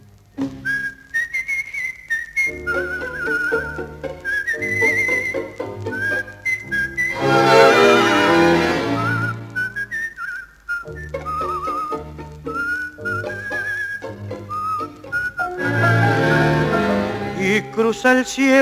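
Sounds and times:
person whistling a song melody: 0.5 - 7.7, 8.5 - 17.7
full instrumental accompaniment: 2.5 - 9.6, 11.0 - 17.9
speech: 17.9 - 18.6.

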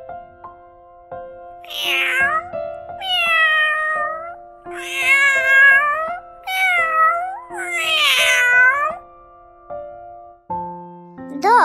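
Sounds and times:
cat meowing: 1.6 - 9.0.

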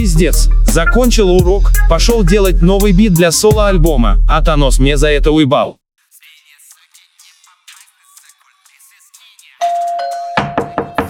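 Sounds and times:
speech: 0.0 - 5.8
bright electronic chime: 9.6 - 11.0
knocking on a door: 10.4 - 11.0.

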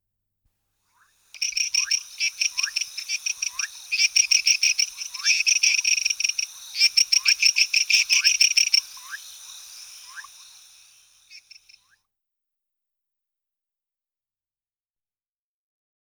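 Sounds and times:
faint rising chirps: 1.1 - 11.9
amphibians trilling in Tortuguero National Park: 1.4 - 11.8.

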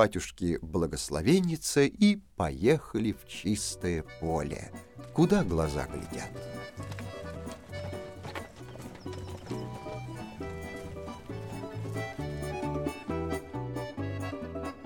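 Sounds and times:
speech: 0.0 - 7.1
musical accompaniment: 3.2 - 14.8
hooves of horses being ridden clip-clopping: 4.1 - 14.4.

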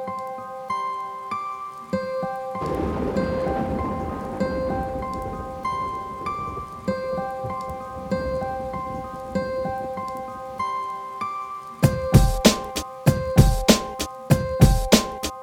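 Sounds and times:
steady rain hissing: 0.1 - 15.3
sharp loud thunder cracks: 2.6 - 9.8.

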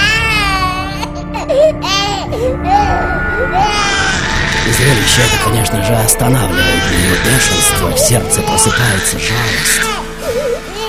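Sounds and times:
baby crying loudly and wailing: 0.0 - 10.8
speech: 4.8 - 10.7.

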